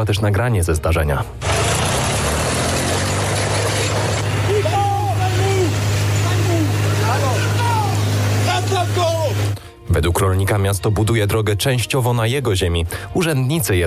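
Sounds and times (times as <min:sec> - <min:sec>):
speech: 0:00.0 - 0:01.7, 0:10.0 - 0:13.8
tractor engine running: 0:01.4 - 0:09.6.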